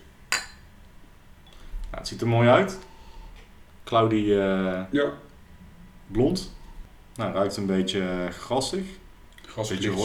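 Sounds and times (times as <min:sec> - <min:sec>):
faint noise: 0:00.0 - 0:10.0
glasses clinking in a toast before tasting beer: 0:00.3 - 0:00.7
speech: 0:02.0 - 0:02.9, 0:03.9 - 0:05.2, 0:06.1 - 0:06.6, 0:07.2 - 0:10.0.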